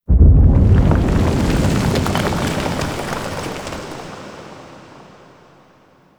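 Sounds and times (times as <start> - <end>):
distant explosion: 0.0 - 4.1
explosion debris falling: 0.0 - 5.1.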